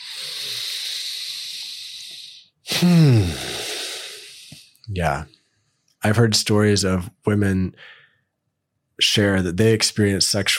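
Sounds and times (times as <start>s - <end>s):
people taking a deep breath together: 0.0s - 4.7s, 7.8s - 8.2s
voiced sigh breathing out: 0.0s - 4.7s
speech: 2.8s - 3.5s, 5.0s - 5.4s, 6.0s - 8.0s, 9.0s - 10.5s.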